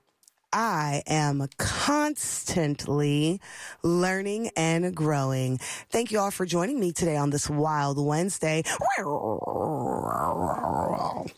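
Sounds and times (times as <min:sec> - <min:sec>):
speech: 0:00.6 - 0:11.3
human voice imitating a tiger growl: 0:08.7 - 0:11.3.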